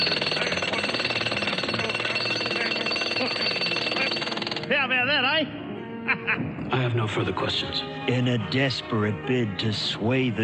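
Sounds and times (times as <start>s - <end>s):
jackhammer hammering: 0.0s - 4.8s
speech: 4.8s - 10.4s
laughter: 5.9s - 7.1s.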